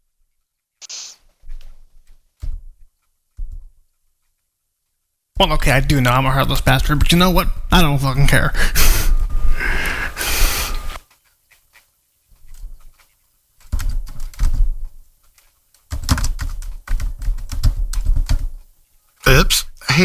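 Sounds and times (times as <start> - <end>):
speech: 5.4 - 8.9
breathy rush: 8.2 - 11.0
typing on a computer keyboard: 12.5 - 14.7, 15.3 - 18.6.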